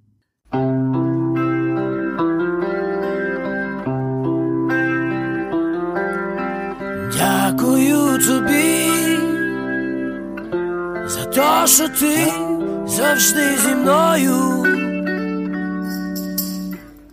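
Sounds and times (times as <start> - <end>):
Ukrainian rock song with layered effects-heavy guitars: 0.6 - 17.1
speech: 11.6 - 14.8.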